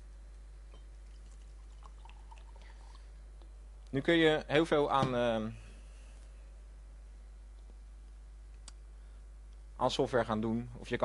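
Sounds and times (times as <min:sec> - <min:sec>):
water pouring into a glass: 0:01.1 - 0:03.0
speech: 0:03.9 - 0:05.6, 0:09.8 - 0:11.0.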